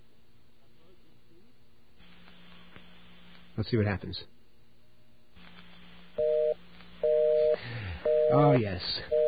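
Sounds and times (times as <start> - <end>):
phone-line noise hiss: 2.0 - 3.6, 5.4 - 9.2
speech: 3.6 - 4.4, 8.3 - 9.2
telephone busy signal beeps: 6.2 - 9.2.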